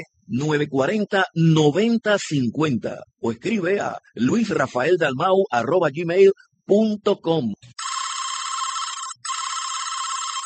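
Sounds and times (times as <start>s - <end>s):
speech: 0.0s - 7.9s
telephone ringing unanswered with bright warbling electronic ring: 7.8s - 10.4s.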